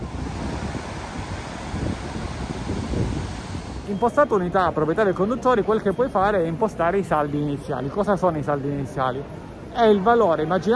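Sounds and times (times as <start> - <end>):
strong wind buffeting the microphone: 0.0 - 4.4
speech: 3.9 - 10.7.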